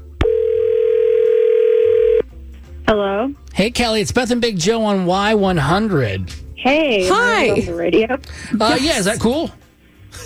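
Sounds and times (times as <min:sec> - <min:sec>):
telephone dial tone: 0:00.2 - 0:02.2
speech: 0:03.6 - 0:10.2.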